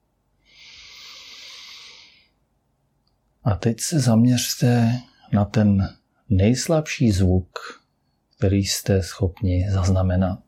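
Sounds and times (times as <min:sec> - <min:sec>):
breath in: 0:00.4 - 0:02.4
speech: 0:03.4 - 0:07.8, 0:08.4 - 0:10.4.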